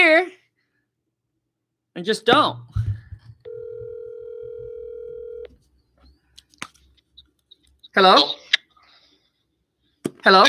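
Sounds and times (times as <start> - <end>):
speech: 2.0 - 2.9, 8.0 - 8.4, 10.2 - 10.4
electronic telephone ring tone over a phone line: 3.5 - 5.5.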